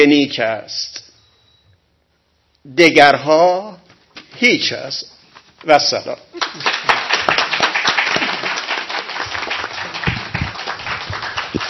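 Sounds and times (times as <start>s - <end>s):
speech: 0.0s - 1.0s, 2.6s - 3.8s, 4.4s - 7.0s
audience applause: 6.4s - 11.6s
sharp claps: 6.4s - 11.6s.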